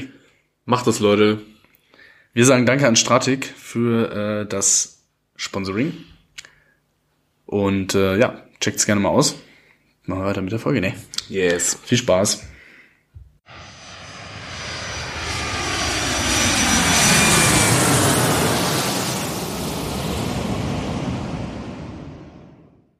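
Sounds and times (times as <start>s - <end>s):
speech: 0.0s - 1.5s, 2.3s - 6.1s, 7.5s - 9.5s, 10.1s - 12.5s
small airplane engine droning as it flies past: 13.5s - 22.9s.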